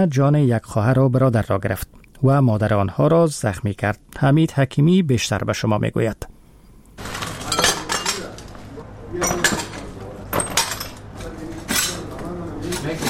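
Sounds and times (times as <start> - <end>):
speech: 0.0 - 6.3
broken glass shards clinking and scraping as they are gathered up: 7.0 - 8.5, 9.2 - 13.0.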